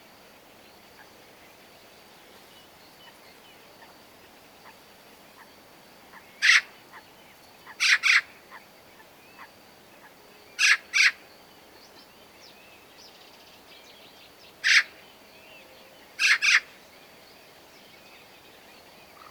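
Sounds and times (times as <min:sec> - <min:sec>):
faint thin calls of other small birds: 0:04.6 - 0:11.3, 0:14.5 - 0:16.8, 0:19.1 - 0:19.2
Eurasian magpie Pica pica calling with harsh noisy rasps: 0:06.4 - 0:06.7, 0:07.8 - 0:08.3, 0:10.6 - 0:11.2, 0:14.6 - 0:15.0, 0:16.2 - 0:16.7.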